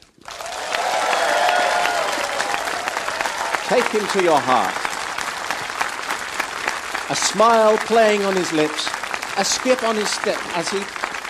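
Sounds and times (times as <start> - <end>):
studio audience applause: 0.1 - 11.2
faint cheering: 0.2 - 4.9
speech: 3.7 - 4.8, 7.1 - 11.0.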